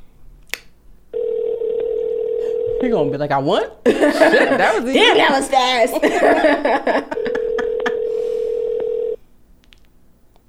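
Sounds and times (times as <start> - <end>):
steady electronic phone tone of an unanswered call: 1.1 - 3.2, 7.1 - 9.2
speech: 2.8 - 7.2
laughter: 3.8 - 8.0.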